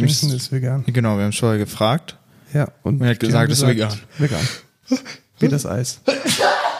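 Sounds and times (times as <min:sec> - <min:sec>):
speech: 0:00.0 - 0:06.6
person sneezing: 0:06.1 - 0:06.7.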